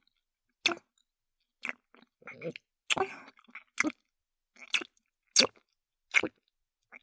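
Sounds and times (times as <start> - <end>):
chewing and eating sounds: 0.7 - 0.9, 1.6 - 6.4.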